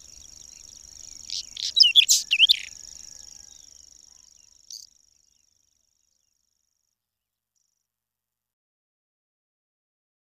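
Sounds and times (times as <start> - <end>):
Whinchat song phrase of whistled and buzzy notes: 0.0 - 6.4.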